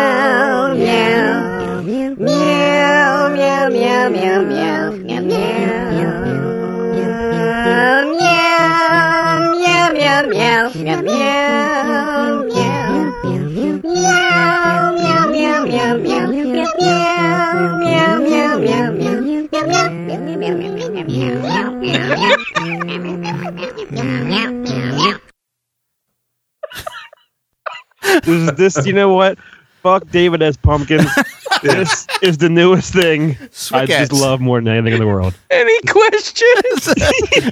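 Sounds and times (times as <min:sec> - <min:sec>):
cat meows layered in harmony into a Christmas carol melody: 0:00.8 - 0:25.1
laughter: 0:07.2 - 0:11.8, 0:17.6 - 0:24.6, 0:26.6 - 0:27.2, 0:30.8 - 0:32.4, 0:34.9 - 0:35.4, 0:36.4 - 0:37.5
speech: 0:28.2 - 0:37.5.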